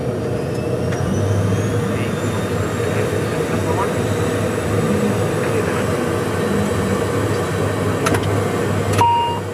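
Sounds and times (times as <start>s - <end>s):
ATR 72 turboprop engines starting up at the airport in Sonderborg: 0.0s - 9.5s
brief high-pitched tone: 9.0s - 9.5s.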